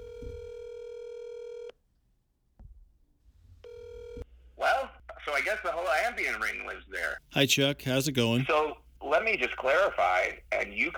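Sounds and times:
telephone line buzzing tone while dialing: 0.0s - 1.7s, 3.6s - 4.2s
speech: 5.5s - 10.9s.

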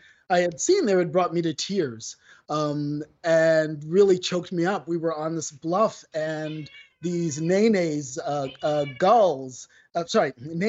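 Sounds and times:
speech: 0.3s - 10.6s
cat meowing: 6.2s - 9.6s.

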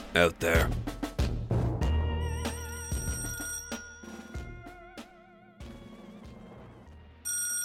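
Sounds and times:
speech: 0.2s - 0.9s
telephone bell ringing: 2.3s - 4.5s, 7.3s - 7.6s.

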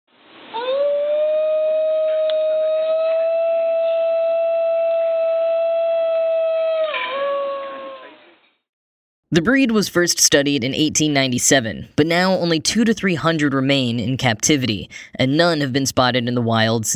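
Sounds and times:
Highland wild dog howling: 0.6s - 8.4s
speech: 9.3s - 16.9s.

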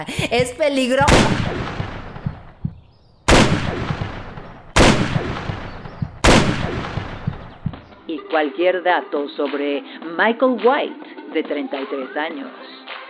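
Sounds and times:
speech: 0.0s - 1.7s, 8.4s - 12.8s
loud gunshots fired at a wall: 0.9s - 7.9s.

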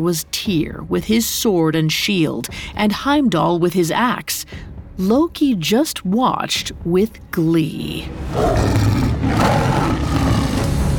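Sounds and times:
speech: 0.0s - 8.9s
deep rumbling big-cat roar from a giant saber-toothed tiger: 8.3s - 10.9s.

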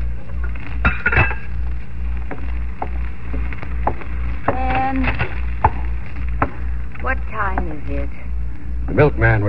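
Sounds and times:
low steady hum in a kitchen: 0.0s - 9.4s
metal pots and pans clattering in a kitchen: 0.9s - 1.5s
speech: 9.0s - 9.4s.

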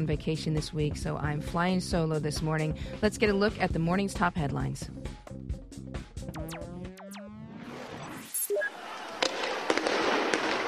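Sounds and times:
speech: 0.0s - 5.2s
descending whistling swoops: 6.4s - 9.6s
sharp pops and bangs of rubber bullets and tear gas: 9.2s - 10.6s.

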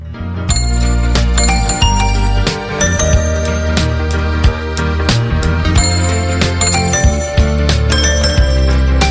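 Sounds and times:
loud song with steady bass and fuller backing: 0.0s - 9.1s
bright bell-like toy piano notes: 0.5s - 3.8s, 5.8s - 9.1s.

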